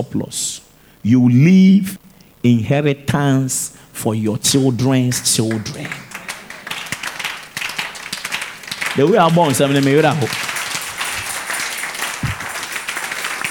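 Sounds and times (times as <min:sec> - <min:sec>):
speech: 0:00.0 - 0:06.1, 0:09.0 - 0:10.5
preacher speaking loudly: 0:01.1 - 0:06.1, 0:09.0 - 0:10.5
audience clapping: 0:04.5 - 0:13.4.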